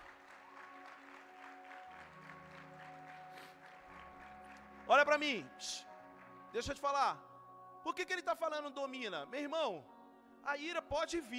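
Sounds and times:
congregation applauding: 0.0s - 7.2s
speech: 4.9s - 5.9s, 6.5s - 11.3s.

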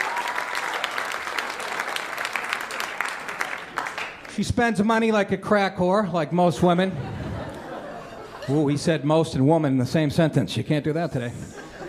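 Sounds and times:
audience applauding: 0.0s - 4.4s
speech: 4.4s - 7.1s, 8.5s - 11.6s
laughter: 6.6s - 8.9s, 11.2s - 11.8s.

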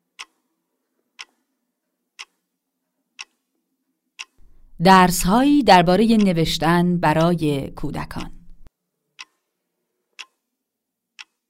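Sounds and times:
clock ticking crisply: 0.2s - 0.4s, 1.2s - 1.4s, 4.2s - 9.4s, 10.2s - 10.4s, 11.2s - 11.4s
faint low hum: 4.4s - 8.7s
speech: 4.8s - 8.4s.

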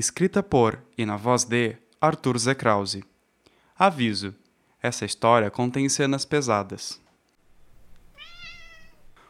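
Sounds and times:
speech: 0.0s - 3.1s, 3.8s - 7.0s
faint low hum: 0.0s - 9.2s
drawn-out cat meow: 8.1s - 9.2s.

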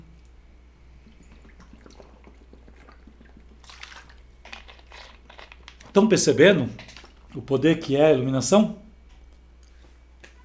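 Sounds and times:
person sipping water: 0.9s - 5.9s
slurps and swallows: 1.0s - 5.9s
speech: 6.0s - 8.8s.

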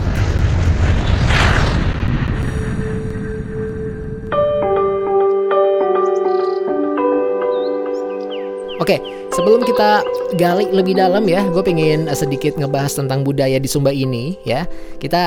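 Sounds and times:
airplane flying sound effect jet whoosh: 0.0s - 5.0s
bright melodic chime notes: 5.2s - 13.9s
speech: 8.8s - 15.2s.

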